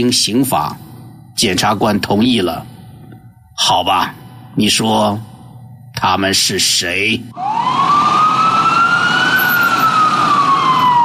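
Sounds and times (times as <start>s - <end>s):
speech: 0.0s - 2.7s, 3.6s - 5.3s, 6.0s - 7.7s
police siren wailing: 7.3s - 11.0s.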